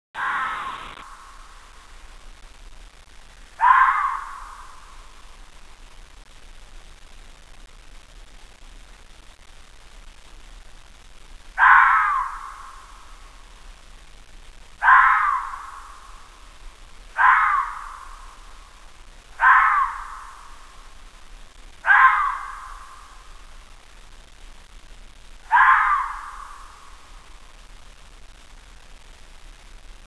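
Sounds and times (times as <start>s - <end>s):
fox crying: 0.2s - 1.2s, 3.6s - 5.0s, 11.6s - 13.1s, 14.8s - 16.4s, 17.1s - 20.9s, 21.8s - 23.4s, 25.4s - 27.2s.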